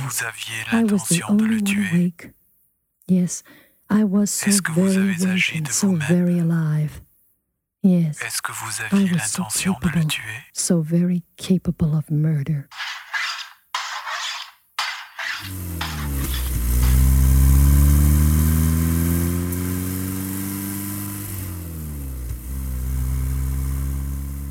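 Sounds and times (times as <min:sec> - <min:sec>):
speech: 0:00.1 - 0:02.4, 0:03.1 - 0:07.0, 0:07.8 - 0:12.9, 0:15.4 - 0:15.7
car engine droning while driving through the American South: 0:15.4 - 0:24.4.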